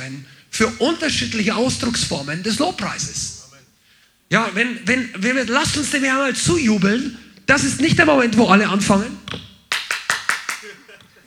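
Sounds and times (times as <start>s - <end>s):
faint murmuring: 0.0s - 9.4s, 10.4s - 11.2s
speech: 0.1s - 3.4s, 4.3s - 9.5s
laughter: 4.3s - 7.0s, 9.8s - 11.2s
sharp hand claps: 9.3s - 11.2s.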